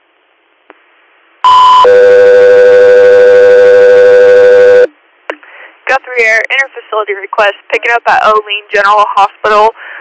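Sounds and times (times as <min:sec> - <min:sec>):
radio dispatch alert tones for an air medical unit: 0:01.5 - 0:04.9
speech: 0:01.8 - 0:02.4, 0:06.2 - 0:09.9.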